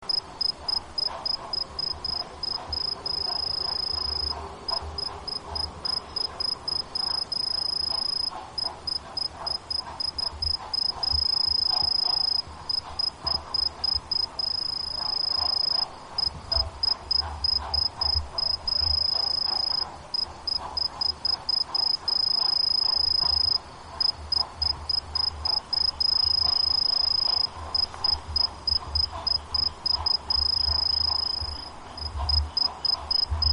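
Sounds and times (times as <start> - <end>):
kinhibari cricket chirping: 0.1 - 33.5.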